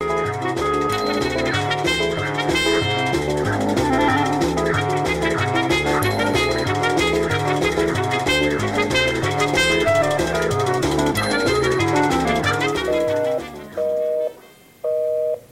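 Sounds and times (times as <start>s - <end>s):
dense layered electronic tones: 0.9s - 14.4s
telephone busy signal beeps: 12.9s - 15.4s.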